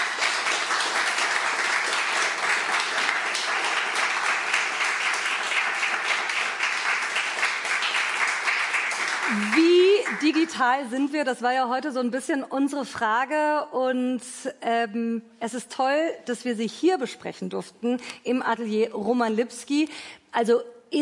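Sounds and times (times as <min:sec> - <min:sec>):
audience applause: 0:00.0 - 0:10.6
speech: 0:10.2 - 0:20.9.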